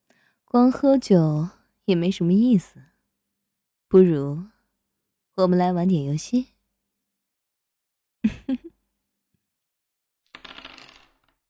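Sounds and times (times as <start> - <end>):
speech: 0.5 - 2.9, 3.9 - 4.5, 5.4 - 6.5, 8.2 - 8.7
dice knocking as picked up or set down: 10.3 - 11.4.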